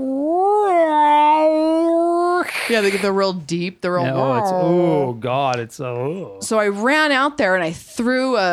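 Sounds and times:
person imitating two cats fighting: 0.0 - 3.2, 4.0 - 5.1
speech: 2.7 - 8.5.

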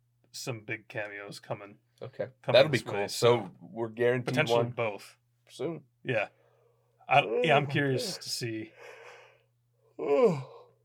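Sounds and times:
speech: 0.4 - 6.4, 7.1 - 9.0, 10.0 - 10.5
soft breath: 8.7 - 9.5
person yawning with a voiced groan: 9.9 - 10.8.

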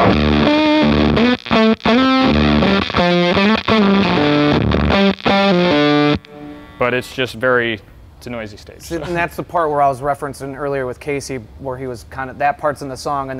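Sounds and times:
heavily distorted layered electric guitar through an effects pedal playing chord stabs: 0.0 - 7.2
speech: 6.9 - 13.3.

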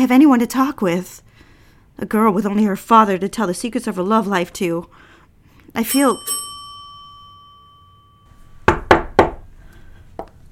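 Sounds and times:
speech: 0.0 - 1.3, 2.0 - 5.1, 5.7 - 6.4
ringing chime: 5.9 - 8.7
sharp knocks on a door: 8.7 - 9.4.

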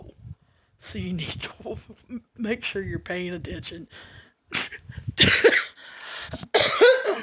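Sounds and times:
speech: 0.8 - 5.6
harsh raspy coughing fit brought on by laughing: 4.5 - 5.8, 6.4 - 7.2.

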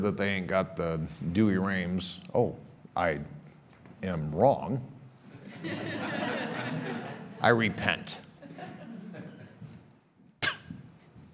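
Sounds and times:
speech: 0.0 - 3.4, 4.0 - 4.9, 5.6 - 8.2
laughter: 5.4 - 7.4, 8.4 - 9.6
person sneezing in the audience at a church sermon: 10.4 - 10.9.

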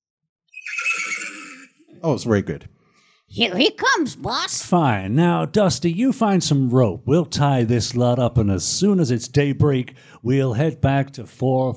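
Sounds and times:
horse neighing: 0.5 - 2.0
speech: 2.0 - 11.7.

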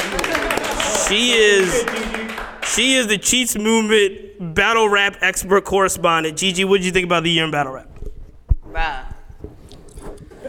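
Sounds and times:
scattered hand clapping from a few people: 0.0 - 3.6
speech: 1.1 - 7.9.

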